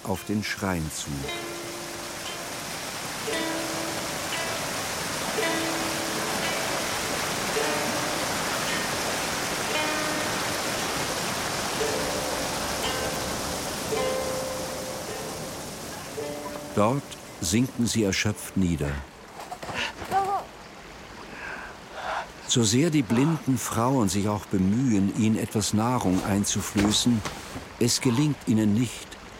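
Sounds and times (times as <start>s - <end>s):
speech: 0.0s - 1.5s, 3.3s - 3.5s, 16.8s - 19.1s, 22.5s - 29.1s
waterfall rushing: 0.0s - 29.3s.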